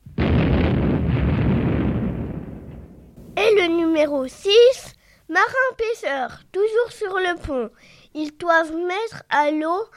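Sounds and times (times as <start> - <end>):
explosion with deep roaring rumble: 0.0 - 3.5
speech: 4.0 - 9.9.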